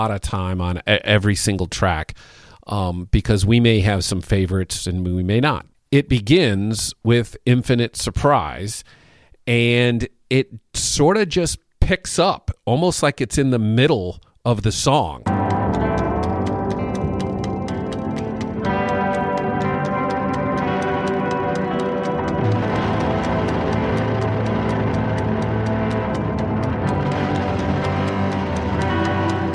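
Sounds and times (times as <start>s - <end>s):
speech: 0.0s - 15.4s
steady quick ticking pulse: 15.2s - 29.5s
dense loud music track: 15.3s - 29.5s.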